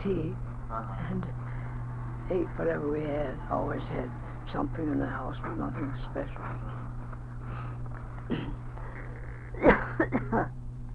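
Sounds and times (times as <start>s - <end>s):
speech: 0.0s - 1.6s, 2.3s - 6.8s, 8.3s - 8.6s, 9.6s - 10.6s
low steady hum: 0.0s - 10.9s
coughing: 8.3s - 10.6s.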